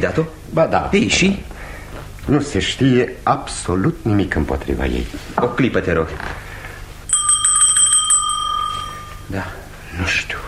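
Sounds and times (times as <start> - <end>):
speech: 0.0 - 1.5, 2.3 - 6.4, 9.3 - 10.4
small hand bell rung to summon a servant: 7.1 - 9.4.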